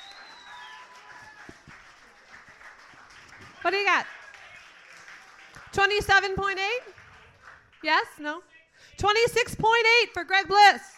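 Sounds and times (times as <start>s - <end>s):
faint whistle-like tones: 0.0s - 0.9s
audience applause at a judged poetry competition: 0.0s - 8.0s
speech: 3.6s - 4.2s, 5.7s - 7.0s, 7.8s - 10.9s.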